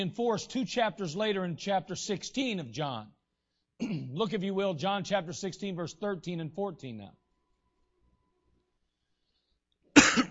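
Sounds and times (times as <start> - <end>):
speech: 0.0 - 3.2, 3.8 - 7.2
harsh breathy cough into a microphone: 3.8 - 4.2, 9.9 - 10.2.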